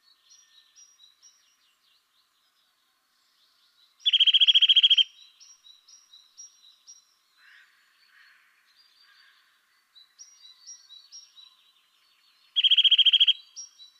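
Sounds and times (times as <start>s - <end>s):
Eurasian nuthatch loud fast even trills: 4.0s - 5.1s, 12.6s - 13.4s.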